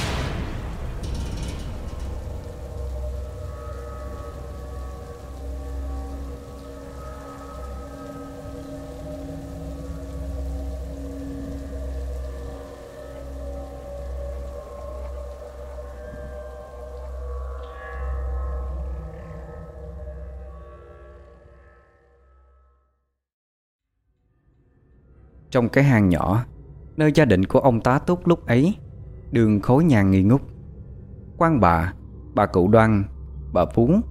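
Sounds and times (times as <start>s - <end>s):
rain falling: 0.0s - 20.7s
low sustained drone with faint wavering tones: 0.0s - 23.1s, 28.5s - 34.0s
speech: 25.5s - 30.5s, 31.4s - 34.0s.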